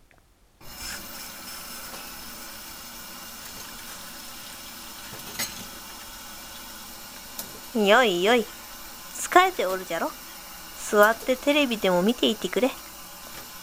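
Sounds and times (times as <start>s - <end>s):
water running from a tap while washing dishes: 0.6s - 13.6s
dish clinking: 5.1s - 5.8s
speech: 7.8s - 8.6s, 9.4s - 10.2s, 10.9s - 12.8s.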